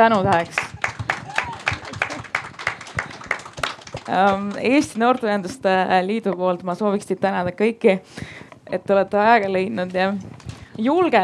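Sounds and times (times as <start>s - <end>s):
speech: 0.0s - 0.7s, 4.1s - 11.2s
small audience group clapping: 0.0s - 5.6s.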